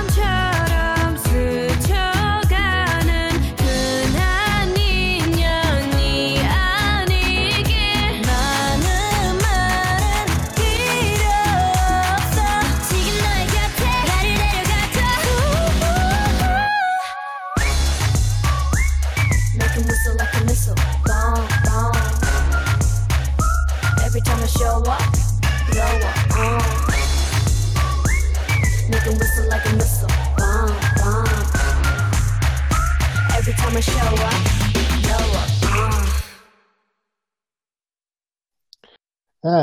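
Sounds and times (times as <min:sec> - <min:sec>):
pounding booming bass beat: 0:00.0 - 0:16.6, 0:17.6 - 0:36.3
K-pop girl group pop song playing: 0:00.0 - 0:36.3
catchy whistled melody: 0:17.5 - 0:34.5.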